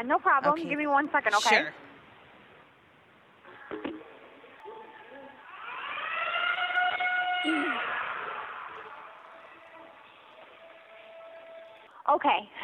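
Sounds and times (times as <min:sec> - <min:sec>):
speech: 0:00.0 - 0:01.8, 0:12.1 - 0:12.6
gym lunk alarm siren wailing at a gym front desk: 0:04.8 - 0:11.8.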